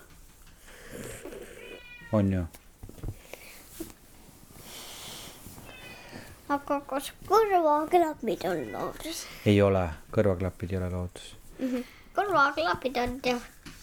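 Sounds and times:
cat meowing: 0.9s - 2.4s, 5.7s - 6.3s, 8.4s - 9.4s
speech: 2.1s - 2.6s, 6.5s - 13.8s.

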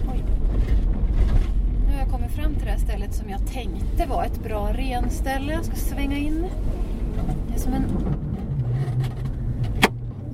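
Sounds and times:
car creaking while turning off road: 0.3s - 1.9s, 6.5s - 10.3s
speech: 3.0s - 6.9s, 7.6s - 8.2s.

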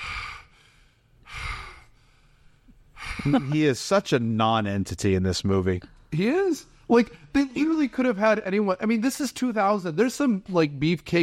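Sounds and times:
person imitating heavy mouth breathing: 0.0s - 3.7s
speech: 3.2s - 11.2s.

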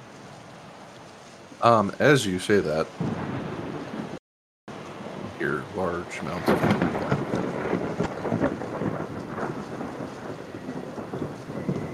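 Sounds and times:
continuous hissing rain in a thunderstorm: 0.0s - 11.9s
speech: 1.6s - 3.4s, 5.6s - 7.0s
deep rolling rumbles of thunder: 2.8s - 4.2s, 4.9s - 11.9s.

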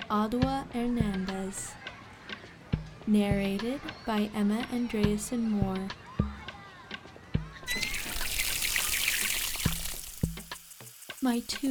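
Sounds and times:
speech: 0.1s - 1.8s, 3.1s - 6.0s, 11.2s - 11.6s
water pouring and splashing while filling a backyard pool: 7.7s - 11.6s.

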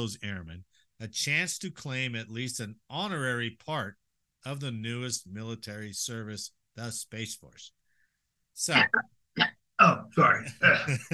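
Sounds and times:
speech: 0.0s - 7.8s, 8.6s - 11.1s
person clearing throat with gravelly rasps: 8.8s - 11.1s.

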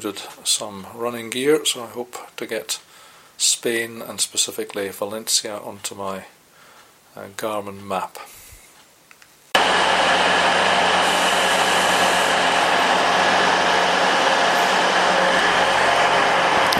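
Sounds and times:
speech: 0.0s - 6.4s, 7.1s - 8.4s
diesel train engine idling at a station platform: 10.4s - 16.7s.

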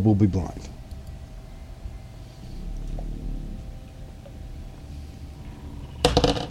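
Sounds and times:
speech: 0.0s - 0.7s
quiet hum: 0.0s - 6.4s
dice for a tabletop game rolling across a hard tabletop: 6.0s - 6.4s.

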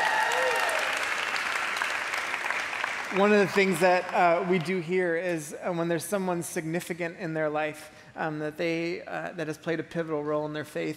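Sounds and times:
person cheering: 0.0s - 1.1s
church audience applauding at a baptism service: 0.0s - 4.9s
speech: 3.1s - 10.9s.

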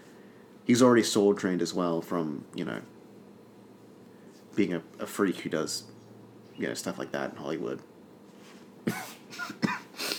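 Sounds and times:
speech: 0.7s - 3.0s, 4.6s - 6.0s, 6.6s - 7.9s, 8.8s - 9.6s
person coughing: 8.9s - 10.1s
raspy breathy throat clearing: 8.9s - 10.1s.

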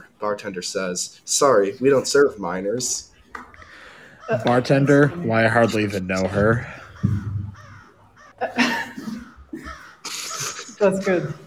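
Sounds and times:
speech: 0.2s - 3.5s, 4.3s - 7.3s, 8.4s - 8.7s, 10.8s - 11.4s
comedy crow cawing sound effect: 3.5s - 8.6s, 9.2s - 11.4s.

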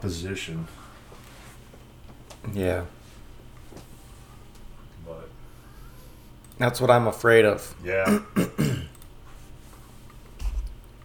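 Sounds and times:
speech: 0.0s - 0.8s, 2.4s - 3.0s, 6.6s - 8.7s
throat clearing into a microphone: 8.0s - 8.9s.

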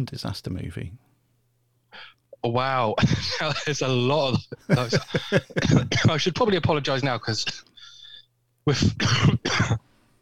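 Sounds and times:
speech: 0.0s - 1.1s, 2.4s - 7.7s, 8.7s - 9.7s
faint hum: 0.0s - 10.1s
laughter: 3.0s - 6.1s
person coughing: 4.7s - 6.6s, 8.7s - 9.8s
throat clearing: 5.4s - 6.1s, 8.7s - 9.8s.

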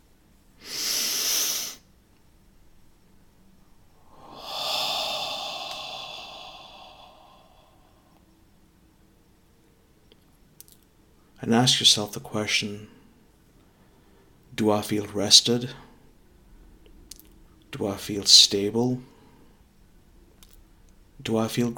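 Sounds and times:
deep breath during a guided relaxation: 0.6s - 1.8s, 4.0s - 8.3s
speech: 11.4s - 13.0s, 14.6s - 15.8s, 17.7s - 19.1s, 21.2s - 21.7s.

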